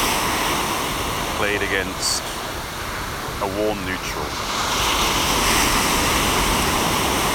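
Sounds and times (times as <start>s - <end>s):
sea surf washing along the shore: 0.0s - 7.3s
speech: 1.4s - 2.4s, 3.4s - 4.8s.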